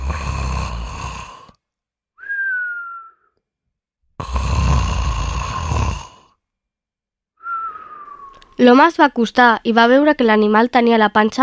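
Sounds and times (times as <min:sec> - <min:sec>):
loud rasping snores of a sleeping wolf: 0:00.0 - 0:01.6, 0:04.2 - 0:06.4
speech: 0:04.2 - 0:04.5, 0:08.6 - 0:11.4.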